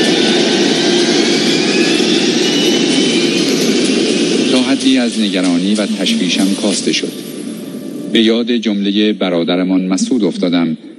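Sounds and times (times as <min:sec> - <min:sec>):
airplane engine roaring with faint high whine: 0:00.0 - 0:10.9
speech: 0:04.8 - 0:07.3, 0:08.1 - 0:10.9.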